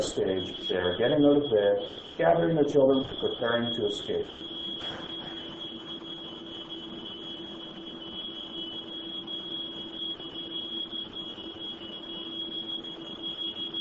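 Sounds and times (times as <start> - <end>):
speech: 0.0 - 5.0
smoke alarm shrieking: 0.0 - 13.7.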